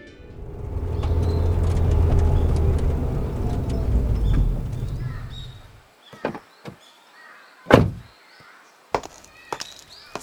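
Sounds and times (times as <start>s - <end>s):
car engine rumbling in a parking lot: 0.0s - 5.8s.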